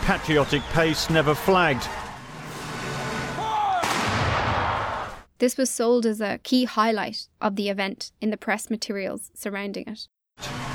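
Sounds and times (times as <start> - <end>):
speech: 0.1 - 2.0, 5.4 - 10.6
World War I field artillery guns firing: 3.8 - 4.8.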